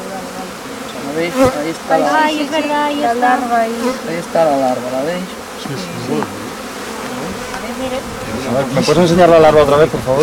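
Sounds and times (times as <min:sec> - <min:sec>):
honeybees buzzing at a hive: 0:00.0 - 0:10.2
speech: 0:01.2 - 0:06.4, 0:07.8 - 0:10.2.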